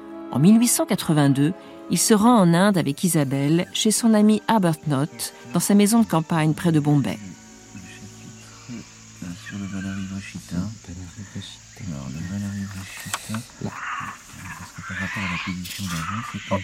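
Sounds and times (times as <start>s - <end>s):
constant high insect-like buzz: 0.0s - 16.6s
speech: 0.3s - 7.4s, 16.4s - 16.6s
monkeys calling near a country house in India: 7.7s - 16.6s.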